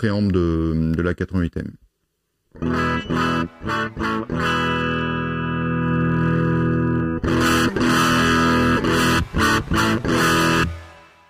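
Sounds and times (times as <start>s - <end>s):
speech: 0.0s - 1.9s, 2.6s - 5.0s
electric guitar crunching through overdriven microphone preamp: 2.5s - 11.2s.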